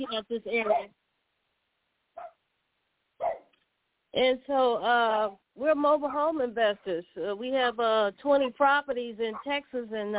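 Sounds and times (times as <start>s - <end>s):
speech: 0.0s - 1.0s, 4.1s - 10.1s
dog barks: 2.2s - 2.4s, 3.2s - 3.5s.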